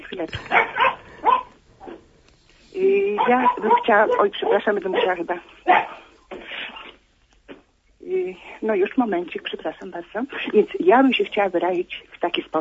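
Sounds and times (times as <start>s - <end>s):
woman talking over a muffled phone-quality line: 0.0s - 0.6s, 2.8s - 5.6s, 8.0s - 12.5s
speech: 0.1s - 0.8s, 3.3s - 6.0s, 8.3s - 12.5s
small dog barking: 0.4s - 2.0s, 3.2s - 6.1s.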